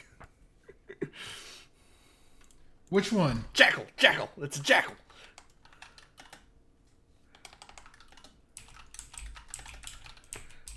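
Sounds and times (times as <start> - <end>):
speech: 2.9 - 5.0
typing on a computer keyboard: 5.1 - 6.5, 7.3 - 10.7.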